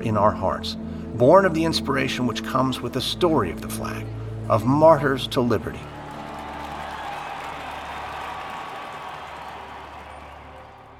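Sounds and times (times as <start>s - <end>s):
speech: 0.0s - 5.9s
large crowd applauding: 5.6s - 10.9s.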